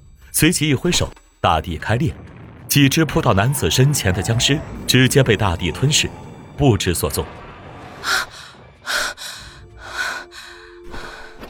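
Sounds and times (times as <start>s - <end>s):
speech: 0.4s - 2.2s, 2.8s - 7.4s
person panting heavily after waking: 8.0s - 11.4s.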